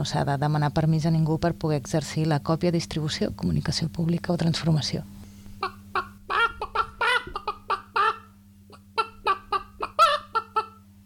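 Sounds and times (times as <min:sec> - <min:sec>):
speech: 0:00.0 - 0:05.2
hens clucking in a henhouse: 0:05.6 - 0:10.8.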